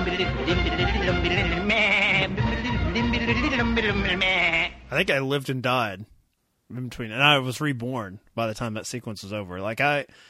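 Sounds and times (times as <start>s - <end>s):
nanny goat bleating: 0.0s - 4.9s
speech: 0.1s - 6.1s, 6.7s - 10.2s.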